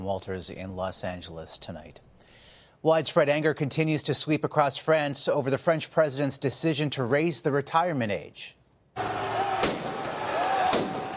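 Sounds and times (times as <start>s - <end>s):
speech: 0.0s - 2.2s, 2.8s - 9.8s
fireworks set off during street protests in Paris: 9.0s - 11.1s.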